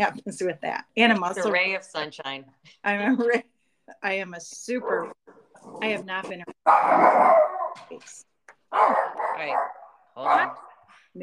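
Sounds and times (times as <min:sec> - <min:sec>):
speech: 0:00.0 - 0:10.6
dog barking while running alongside a golf cart: 0:06.6 - 0:07.9, 0:08.7 - 0:10.8.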